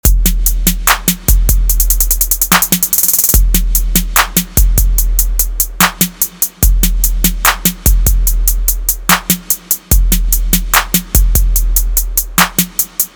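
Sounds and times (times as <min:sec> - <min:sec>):
snare drum: 0:00.0 - 0:13.1.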